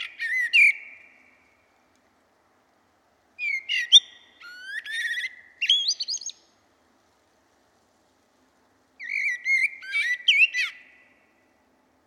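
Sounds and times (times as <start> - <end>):
Turdus merula common blackbird song of low fluted whistles and high twittering: 0.0 - 1.8, 3.4 - 6.5, 9.0 - 11.5.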